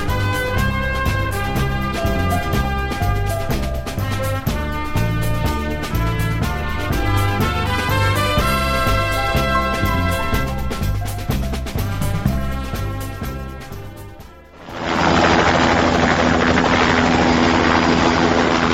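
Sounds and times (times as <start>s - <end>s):
rhythmic music: 0.0s - 14.7s
air rescue service helicopter rotor and engine roaring overhead: 0.0s - 18.7s.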